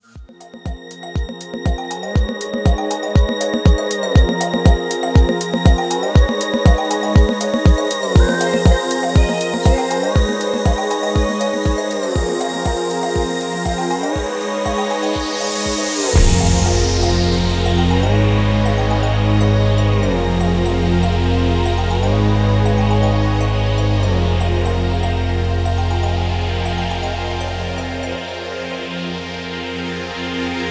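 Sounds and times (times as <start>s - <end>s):
instrumental soundtrack: 0.0s - 30.7s
female singer: 2.0s - 25.2s.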